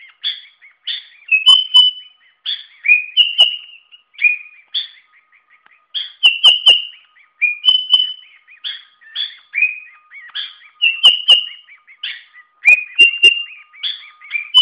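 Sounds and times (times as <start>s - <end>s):
sooty-headed bulbul singing: 0.0s - 14.6s.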